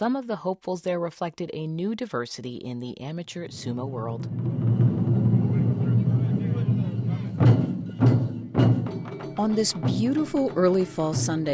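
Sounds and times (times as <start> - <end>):
speech: 0.0 - 4.9, 9.4 - 11.5
taiko drums pounding on a plaza in downtown Los Angeles: 3.5 - 11.5.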